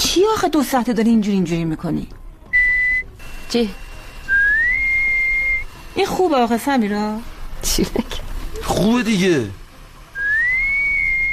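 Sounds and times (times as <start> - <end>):
speech: 0.2 - 2.2, 3.5 - 3.8, 6.0 - 9.6
sustained rising whistle: 2.6 - 3.1, 4.3 - 5.7, 10.1 - 11.3.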